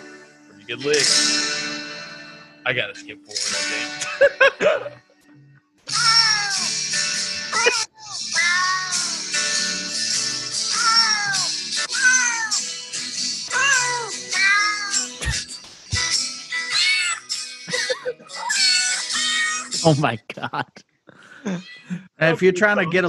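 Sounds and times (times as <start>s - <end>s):
speech: 0.7s - 1.6s, 2.7s - 5.1s, 19.8s - 20.8s, 22.2s - 23.0s
laughter: 3.5s - 5.0s, 7.5s - 7.9s, 17.7s - 18.6s, 19.9s - 20.8s, 21.5s - 23.0s
cat meows pitched and sequenced into a bouncy musical tune: 5.9s - 6.8s, 7.6s - 9.4s, 10.6s - 12.7s, 13.5s - 15.4s, 16.6s - 17.3s, 18.5s - 19.7s.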